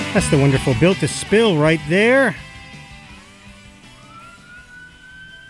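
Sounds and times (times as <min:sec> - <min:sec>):
speech: 0:00.1 - 0:02.5
police siren wailing in a rising sweep: 0:03.9 - 0:05.4.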